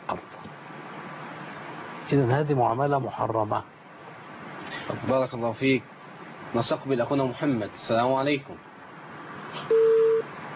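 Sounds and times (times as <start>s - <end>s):
speech: 2.1s - 3.8s, 4.9s - 5.9s, 6.5s - 8.7s
telephone busy tone after a call is cut off: 9.7s - 10.3s.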